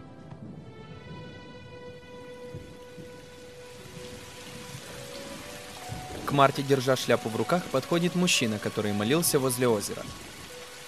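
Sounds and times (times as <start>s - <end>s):
rain falling in a cemetery: 0.2s - 10.8s
speech: 6.3s - 10.4s.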